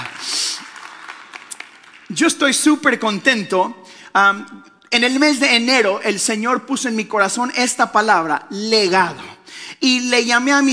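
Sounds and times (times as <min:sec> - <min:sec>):
crowd applauding: 0:00.0 - 0:03.2
speech: 0:02.1 - 0:10.7.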